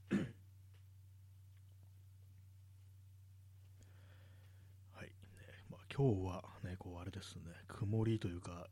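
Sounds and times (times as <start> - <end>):
throat clearing: 0.0 - 0.4
steady low hum: 0.0 - 8.7
speech: 5.0 - 8.7.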